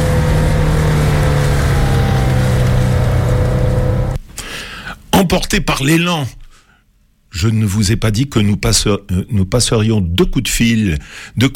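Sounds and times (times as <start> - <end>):
car engine droning as the car leaves town and speeds up: 0.0 - 4.2
speech: 5.3 - 6.4, 7.4 - 11.5.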